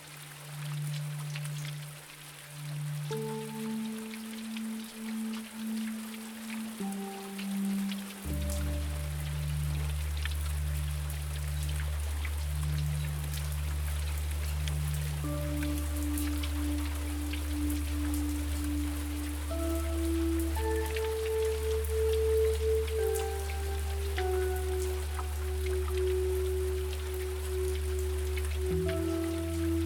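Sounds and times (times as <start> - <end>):
rain falling: 0.0 - 29.8
soft sustained low tones: 0.0 - 29.8.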